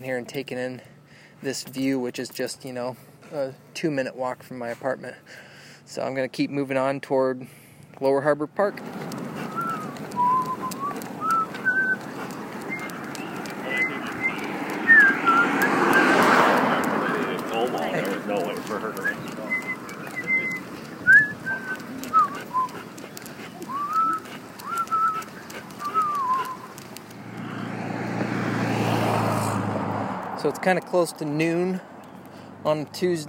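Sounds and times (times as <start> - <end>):
speech: 0.0 - 9.0, 30.7 - 31.9, 32.6 - 33.2
steady street noise: 0.0 - 33.2
low engine rumble: 8.5 - 33.2
cars driving past outdoors: 8.6 - 33.2
chirpy bird whistles: 9.4 - 16.1, 18.9 - 22.8, 23.7 - 26.7.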